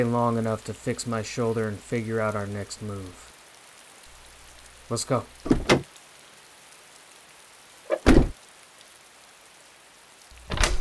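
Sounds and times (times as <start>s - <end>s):
speech: 0.0s - 3.2s, 4.9s - 5.7s
rain-like hiss: 0.0s - 10.7s
run-down motel room door swinging open: 5.4s - 5.8s, 7.9s - 8.4s, 10.5s - 10.7s
motel room door latch clicking: 5.5s - 5.8s, 10.5s - 10.7s
shuffling thump: 5.5s - 5.8s, 7.9s - 8.4s.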